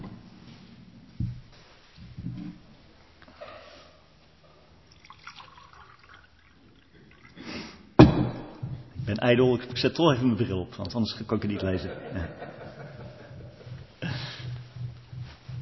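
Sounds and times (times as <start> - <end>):
water pouring into a glass: 4.8 - 7.5
sharp thud of something being set down: 8.0 - 8.8
speech: 9.2 - 13.0
laughter: 11.4 - 14.8.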